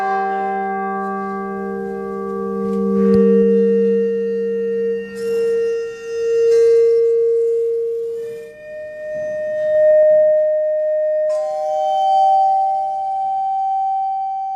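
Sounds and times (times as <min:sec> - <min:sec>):
bell partial tones made audible with a special device humming: 0:00.0 - 0:13.7.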